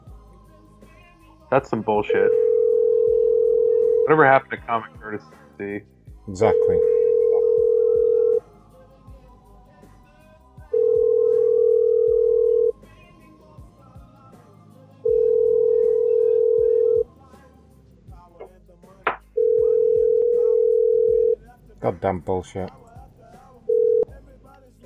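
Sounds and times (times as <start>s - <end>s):
speech: 1.5s - 2.5s, 4.1s - 6.9s, 22.0s - 22.8s
ringback tone on an outgoing phone call: 2.1s - 4.2s, 6.4s - 8.4s, 10.8s - 12.7s, 15.0s - 17.1s, 19.4s - 21.4s, 23.7s - 24.1s.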